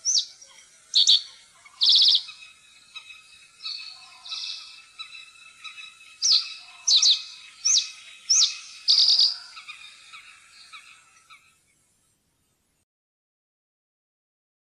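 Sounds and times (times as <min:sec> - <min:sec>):
common reed bunting singing chirps and buzzy trills: 0:00.0 - 0:12.7.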